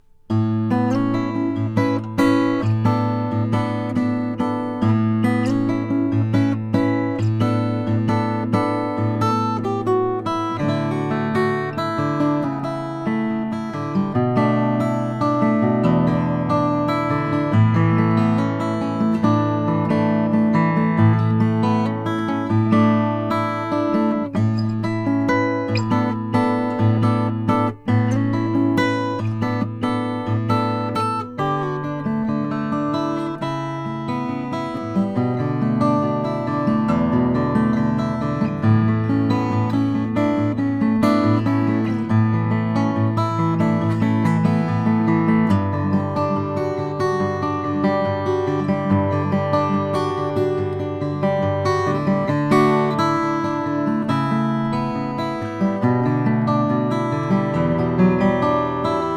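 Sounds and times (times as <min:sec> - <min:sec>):
2003 Goodall MP14 Mastergrade cedar top guitar: 0:00.0 - 0:59.1.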